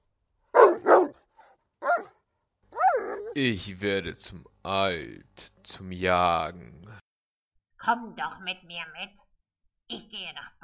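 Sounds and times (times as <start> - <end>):
old dog yelping: 0.5 - 1.2, 1.8 - 3.4
old dog barking: 0.5 - 3.4
speech: 3.4 - 7.0, 7.8 - 9.2, 9.9 - 10.6.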